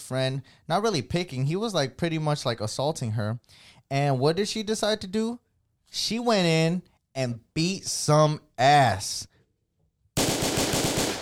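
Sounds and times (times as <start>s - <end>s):
speech: 0.1s - 9.3s
rapid automatic gunfire: 10.2s - 11.2s.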